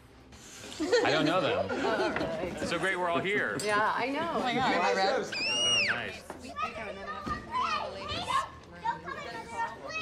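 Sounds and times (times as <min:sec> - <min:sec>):
busy murmur in an expensive restaurant in Manhattan: 0:00.3 - 0:10.0
laughter: 0:00.7 - 0:05.2
speech: 0:00.8 - 0:07.3
toddlers chattering and squealing in an expensive restaurant in Manhattan: 0:05.0 - 0:10.0.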